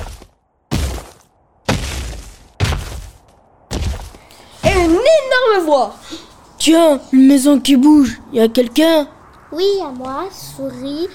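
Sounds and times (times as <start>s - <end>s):
heavy stomping footsteps: 0.0s - 4.8s
speech: 5.2s - 11.1s.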